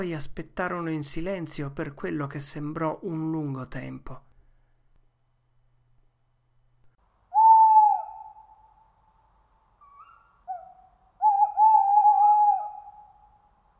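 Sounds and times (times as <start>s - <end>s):
speech: 0.0s - 4.3s
distant little owl calling: 7.3s - 13.6s.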